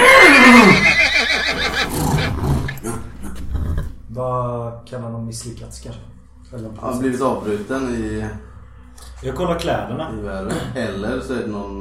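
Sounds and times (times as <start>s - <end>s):
horses neighing and whinnying in a stable: 0.0s - 3.9s
speech: 4.8s - 11.7s.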